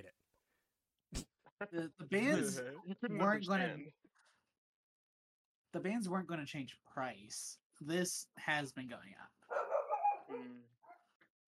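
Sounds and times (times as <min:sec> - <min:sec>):
speech: 0:01.1 - 0:04.0, 0:05.7 - 0:09.5
dogs barking: 0:09.5 - 0:11.1.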